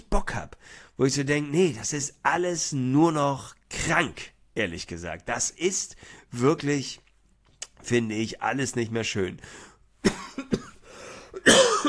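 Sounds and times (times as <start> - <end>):
speech: 0.2 - 7.0, 7.8 - 9.7
person having a coughing fit: 10.0 - 11.8.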